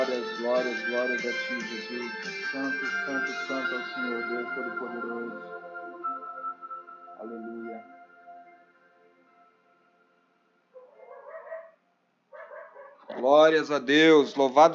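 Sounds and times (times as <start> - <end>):
speech: 0.4 - 5.6, 7.2 - 8.0, 13.1 - 14.7
dog barking and whining: 10.8 - 13.3.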